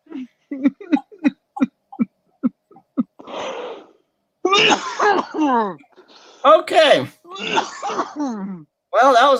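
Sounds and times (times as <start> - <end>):
harsh coughing: 0.6 - 2.1, 4.4 - 5.8, 7.3 - 8.4
raspy exhale: 3.2 - 4.0
speech: 5.5 - 9.3.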